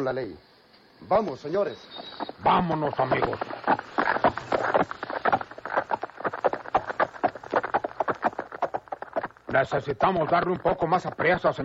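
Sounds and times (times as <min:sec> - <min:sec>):
speech: 0:00.0 - 0:04.4, 0:09.6 - 0:11.6
several horses trotting with hooves clip-clopping: 0:01.3 - 0:11.6.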